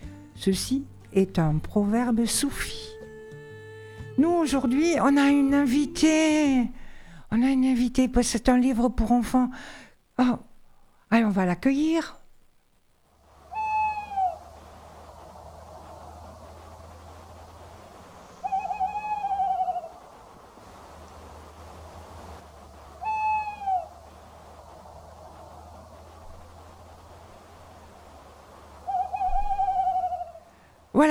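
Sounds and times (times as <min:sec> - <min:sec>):
faint low steady hum: 0:00.0 - 0:31.1
speech: 0:00.4 - 0:02.9, 0:04.2 - 0:10.5, 0:11.1 - 0:12.2
little owl hooting: 0:13.2 - 0:31.1.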